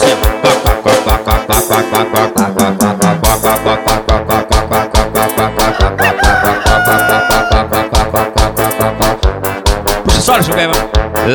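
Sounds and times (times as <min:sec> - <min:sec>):
driving musical beat: 0:00.0 - 0:11.3
rooster crowing: 0:05.6 - 0:07.7.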